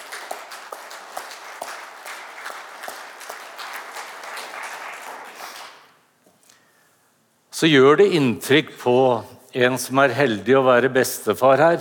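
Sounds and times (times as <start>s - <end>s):
crowd applauding: 0.0s - 6.0s
speech: 7.6s - 11.7s.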